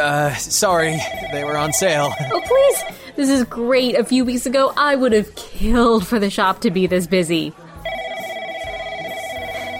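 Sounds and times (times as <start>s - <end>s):
speech: 0.0s - 7.6s
telephone ringing with an electronic trill: 0.8s - 3.0s, 7.8s - 9.7s
laughter: 2.0s - 2.9s.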